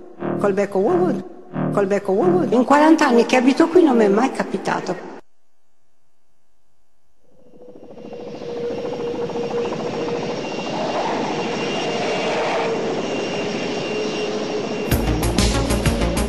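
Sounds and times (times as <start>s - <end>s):
speech: 0.4s - 5.1s
helicopter engine roaring while taking off: 7.3s - 16.2s.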